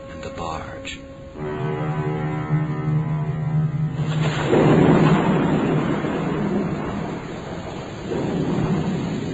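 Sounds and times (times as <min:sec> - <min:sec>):
low drone: 0:00.0 - 0:09.3
speech: 0:00.2 - 0:01.6
thunder crack and rumble: 0:02.5 - 0:09.3
stormy hiss: 0:03.9 - 0:09.3.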